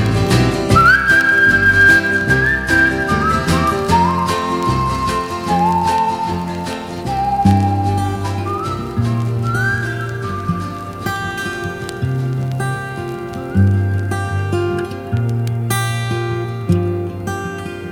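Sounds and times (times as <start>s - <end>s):
full steady instrumental accompaniment: 0.0s - 17.8s
grandmother whistling a slow hymn-like melody: 0.7s - 11.9s.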